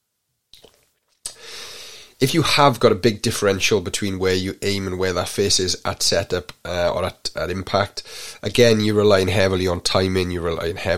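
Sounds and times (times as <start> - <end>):
person sipping coffee: 0.6 - 1.6
speech: 2.2 - 10.9.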